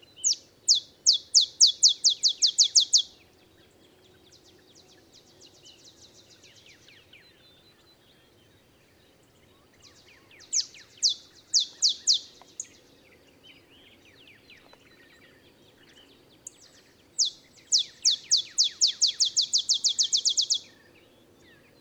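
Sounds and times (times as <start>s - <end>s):
olive sparrow song in early morning in Texas: 0.0s - 21.7s.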